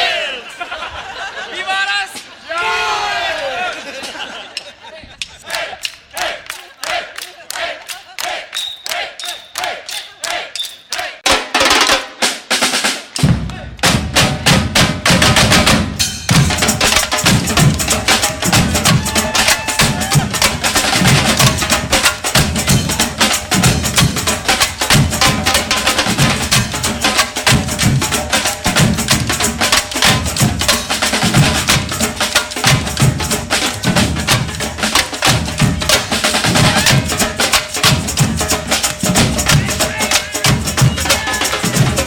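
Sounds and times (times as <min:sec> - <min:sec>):
laughter: 0:00.1 - 0:09.1, 0:18.8 - 0:21.4
Bhangra dhol drumming: 0:11.3 - 0:42.0.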